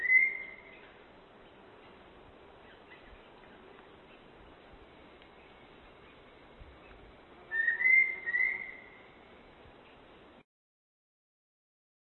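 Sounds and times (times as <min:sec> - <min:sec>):
background hiss: 0:00.0 - 0:10.4
long-billed thrush whistling: 0:07.5 - 0:09.0.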